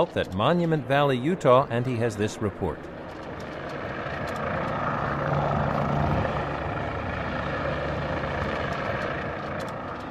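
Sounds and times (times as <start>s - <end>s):
speech: 0.0s - 3.0s
race plane engine roaring while diving from the sky: 0.0s - 10.0s.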